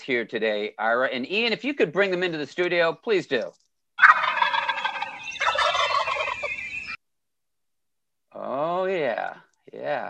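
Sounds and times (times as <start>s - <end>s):
speech: 0.0s - 3.6s, 8.4s - 10.0s
turkeys gobbling: 4.0s - 7.0s.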